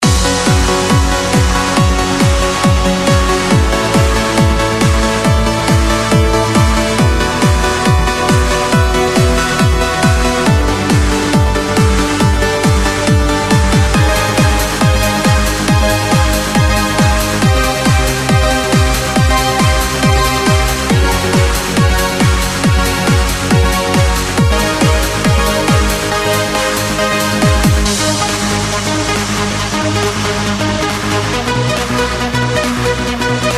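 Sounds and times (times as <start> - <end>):
peak time trance MIDI music: 0.0 - 33.5.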